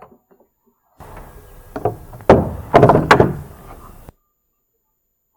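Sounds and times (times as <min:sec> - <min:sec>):
large heavy door slamming shut: 0:01.0 - 0:04.1.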